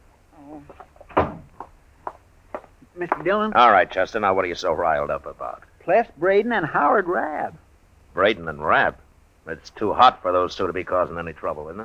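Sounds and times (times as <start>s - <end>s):
door swinging shut with a solid thud: 1.1s - 1.5s
speech: 3.0s - 7.6s, 8.2s - 11.8s.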